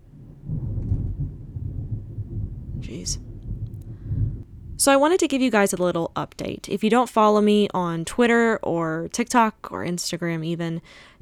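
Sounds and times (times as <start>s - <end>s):
thunder rumbling during a storm: 0.0s - 6.2s
speech: 2.8s - 3.3s, 4.8s - 11.1s.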